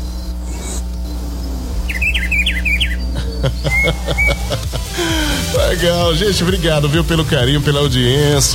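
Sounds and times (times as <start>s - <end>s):
rufous-browed peppershrike singing outdoors in the countryside: 0.0s - 4.7s
steady low hum: 0.0s - 8.5s
laughter: 3.1s - 7.7s
speech: 3.4s - 8.5s.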